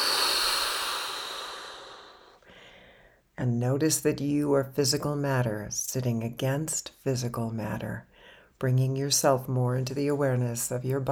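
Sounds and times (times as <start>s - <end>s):
deep breath blown out during a grounding exercise: 0.0s - 3.0s
speech: 3.4s - 11.1s.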